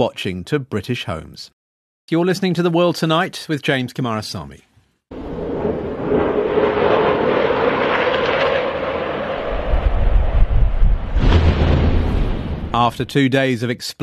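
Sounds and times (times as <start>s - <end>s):
speech: 0.0s - 4.7s, 12.7s - 14.0s
sonic boom from Israeli military jets over Beirut: 5.1s - 13.0s.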